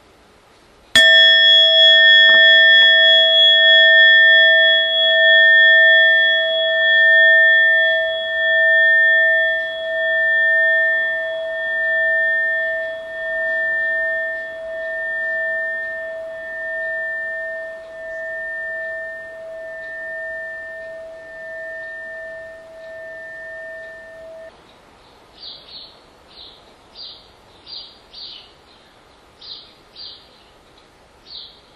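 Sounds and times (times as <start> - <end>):
meditation bell struck and ringing: 1.0 - 24.5.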